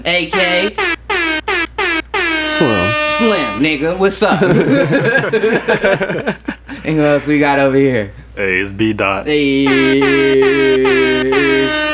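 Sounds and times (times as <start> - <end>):
speech: 0.0 - 1.0, 2.6 - 11.9
air horn sound effect from an air horn button: 0.5 - 4.0, 9.6 - 11.9
laughter: 4.2 - 7.4.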